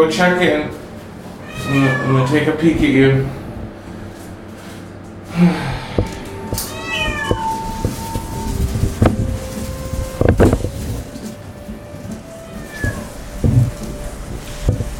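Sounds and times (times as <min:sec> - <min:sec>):
speech: 0:00.0 - 0:00.8, 0:01.6 - 0:03.4, 0:05.4 - 0:06.8
steady low mechanical hum: 0:00.0 - 0:14.9
cat meowing loudly in elevator: 0:01.4 - 0:02.5, 0:06.4 - 0:08.6, 0:12.5 - 0:13.1
clunks and knocks: 0:05.9 - 0:14.9.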